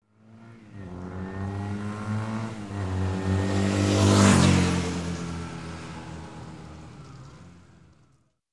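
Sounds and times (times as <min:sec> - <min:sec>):
motorcycle passing by quickly: 0:00.1 - 0:08.3.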